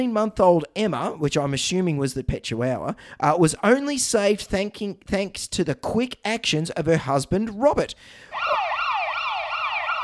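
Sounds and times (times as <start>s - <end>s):
speech: 0.0s - 8.6s
ambulance siren wailing: 8.3s - 10.0s.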